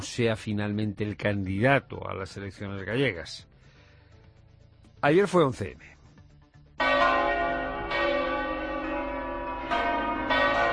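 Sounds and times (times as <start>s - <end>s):
speech: 0.0s - 3.5s, 5.0s - 6.0s
Madrid church bells ringing in memory of attack victims: 6.8s - 10.7s.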